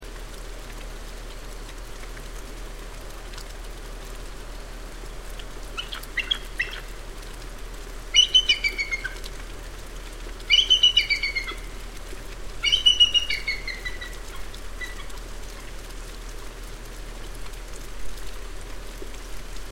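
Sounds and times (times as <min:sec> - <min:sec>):
bald eagle calling: 0:05.8 - 0:07.0, 0:08.1 - 0:09.3, 0:10.4 - 0:11.8, 0:12.6 - 0:15.2.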